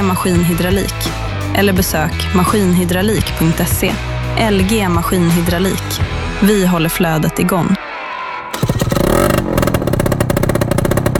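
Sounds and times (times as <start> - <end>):
speech: 0.1 - 7.8
motorcycle engine starting and revving: 8.5 - 11.1.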